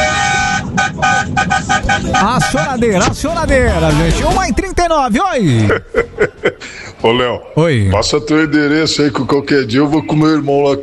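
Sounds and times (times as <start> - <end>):
car horn honking: 0.0 - 4.3
speech: 2.2 - 10.8
laughter: 5.4 - 6.8.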